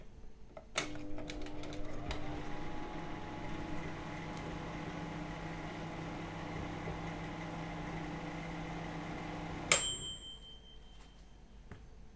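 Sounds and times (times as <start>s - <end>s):
kitchen microwave: 0.8s - 10.5s.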